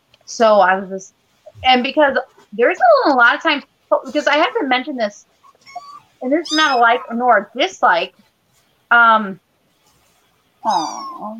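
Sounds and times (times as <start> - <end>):
speech: 0.3 - 8.3, 8.9 - 9.4, 10.6 - 11.3
kitten meowing: 5.5 - 7.2, 10.7 - 11.3.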